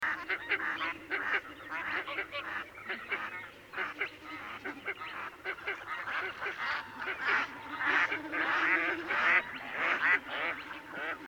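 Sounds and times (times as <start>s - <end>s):
Northern Shoveler Spatula clypeata waterfowl: 0.0s - 11.2s.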